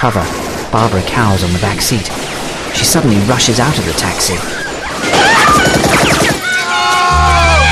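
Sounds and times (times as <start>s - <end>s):
speech: 0.0s - 4.7s
gunfire exchanged at a taxi: 2.1s - 6.6s.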